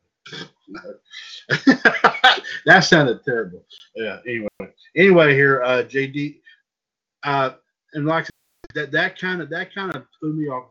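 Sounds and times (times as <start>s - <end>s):
laughter: 0.3s - 6.3s, 7.3s - 10.6s
speech: 0.3s - 6.4s, 7.2s - 10.6s
voice making croaky burp-like grunts: 2.4s - 4.6s.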